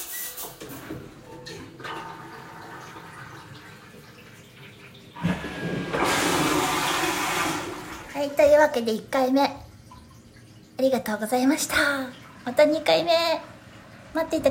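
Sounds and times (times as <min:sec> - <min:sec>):
toilet flushing: 0:00.0 - 0:14.4
speech: 0:08.3 - 0:09.6, 0:10.8 - 0:13.5, 0:14.1 - 0:14.4.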